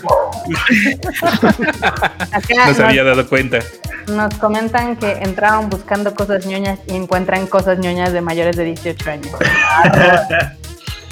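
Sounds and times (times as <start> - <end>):
dog barking outside the house: 0.0 - 0.5
speech: 0.4 - 10.6
laughter: 0.5 - 4.2, 9.3 - 10.6.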